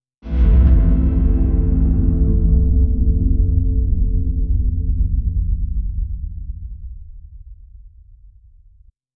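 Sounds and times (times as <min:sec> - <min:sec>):
string instrument bass: 0:00.2 - 0:06.0.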